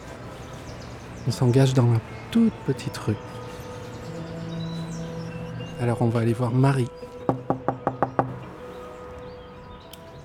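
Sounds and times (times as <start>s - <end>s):
speech: 1.2s - 3.4s, 5.8s - 7.8s
knocking on a wooden street door in Marseille: 7.3s - 8.4s.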